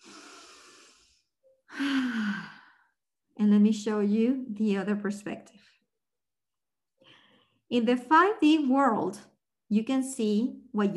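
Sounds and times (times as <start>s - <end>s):
deep breath: 0.0s - 3.0s, 7.0s - 7.7s
speech: 3.4s - 5.8s, 7.7s - 10.9s.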